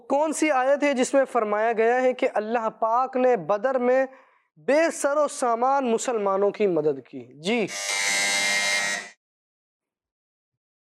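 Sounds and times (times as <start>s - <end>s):
speech: 0.1s - 8.1s
quiz show buzzer pressed by a contestant: 7.7s - 9.2s.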